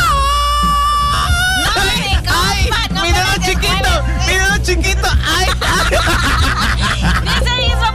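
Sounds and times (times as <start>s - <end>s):
person screaming: 0.0s - 1.8s
laughter: 2.9s - 7.8s.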